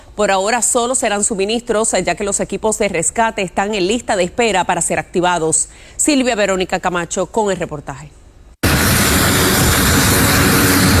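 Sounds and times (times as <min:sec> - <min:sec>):
speech: 0:00.2 - 0:08.2
airplane taking off from Puerto Rico with humanitarian aid: 0:08.6 - 0:10.9.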